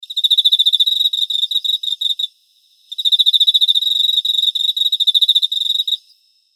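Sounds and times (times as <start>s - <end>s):
Teleogryllus emma field cricket chirping: 0.0s - 6.5s.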